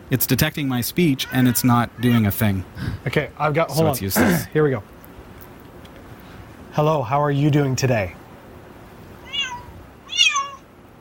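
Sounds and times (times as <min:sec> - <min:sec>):
speech: 0:00.1 - 0:05.0, 0:06.8 - 0:08.2
cat meows played by translator app: 0:01.2 - 0:02.4, 0:09.2 - 0:10.7.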